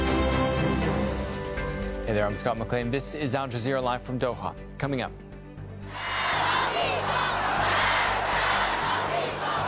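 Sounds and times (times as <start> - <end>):
huge crowd roaring and chanting in unison at a funeral in Iran: 0.0 - 2.1, 5.9 - 9.6
speech: 2.1 - 5.2.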